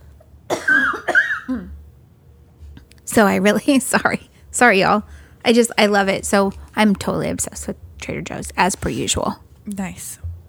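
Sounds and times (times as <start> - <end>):
person coughing: 0.5 - 1.8
speech: 3.2 - 10.2.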